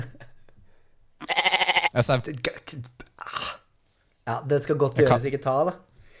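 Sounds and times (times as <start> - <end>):
sheep bleating: 1.2 - 2.0
speech: 2.0 - 3.0, 4.3 - 5.9.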